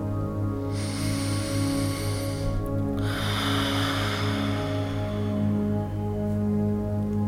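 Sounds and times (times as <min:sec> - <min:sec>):
steady low tonal hum: 0:00.0 - 0:07.2
long hissing exhale through the mouth in a breathing exercise: 0:00.6 - 0:06.3
soft airy inhale through the nose in a breathing exercise: 0:00.6 - 0:06.3.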